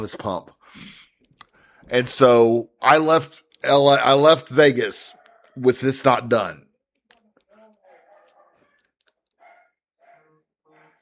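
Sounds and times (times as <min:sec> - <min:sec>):
speech: 0:00.0 - 0:01.0, 0:01.9 - 0:06.7
dog barking: 0:05.1 - 0:05.6, 0:07.8 - 0:08.8, 0:09.4 - 0:11.0.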